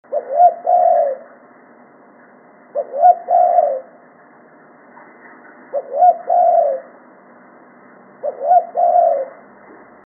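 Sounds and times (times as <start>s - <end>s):
spotted dove cooing: 0.1s - 1.4s, 2.7s - 4.0s, 5.7s - 7.0s, 8.2s - 9.6s.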